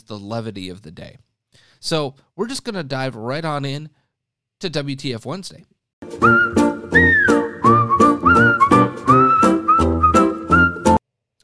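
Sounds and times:
speech: 0:00.0 - 0:04.0, 0:04.6 - 0:06.5
person whistling a melodic tune: 0:06.2 - 0:11.0.

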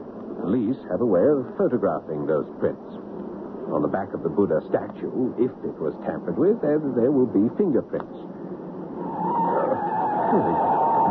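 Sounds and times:
speech: 0:00.5 - 0:03.1, 0:03.7 - 0:08.4, 0:10.3 - 0:11.0
car tires screeching as brakes and handbrake fail: 0:09.0 - 0:11.0.

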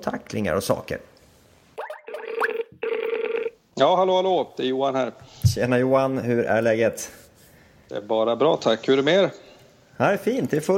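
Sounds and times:
speech: 0:00.0 - 0:01.1, 0:03.8 - 0:07.2, 0:07.9 - 0:09.4, 0:10.0 - 0:10.7
outgoing call ringing tone: 0:01.8 - 0:03.6.

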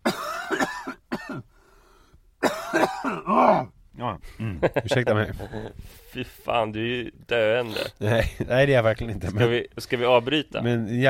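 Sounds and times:
person coughing from a cold: 0:00.0 - 0:01.5, 0:02.4 - 0:03.8
speech: 0:04.1 - 0:11.0.

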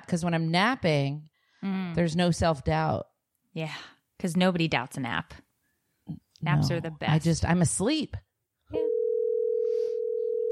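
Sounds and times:
speech: 0:00.1 - 0:05.4, 0:06.1 - 0:08.8
steady telephone tone while placing a call: 0:08.8 - 0:10.4.

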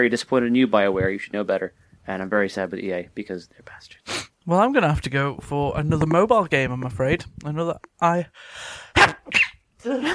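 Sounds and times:
speech: 0:00.0 - 0:10.1
quick sharp sneeze after a drawn-in breath: 0:08.9 - 0:09.5.

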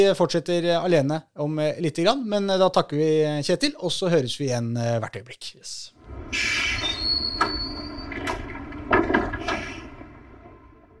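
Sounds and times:
speech: 0:00.0 - 0:07.3
tram rumbling to a halt: 0:06.0 - 0:10.9
tram sliding doors opening: 0:06.0 - 0:10.9
high thin squeal of tram wheels: 0:06.1 - 0:10.6
clunks: 0:06.8 - 0:10.9.

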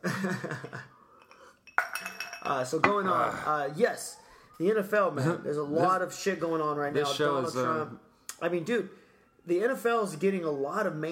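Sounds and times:
speech: 0:00.0 - 0:00.7, 0:02.5 - 0:11.1
ice cubes clinking and rattling against a glass: 0:01.7 - 0:02.6.

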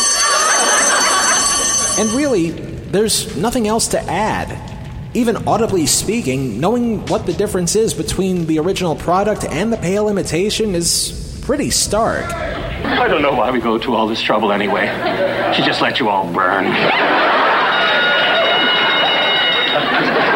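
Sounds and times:
laughter: 0:00.0 - 0:02.3, 0:12.2 - 0:20.3
fire alarm bells ringing: 0:00.0 - 0:02.6, 0:16.9 - 0:20.3
speech: 0:02.0 - 0:17.3.

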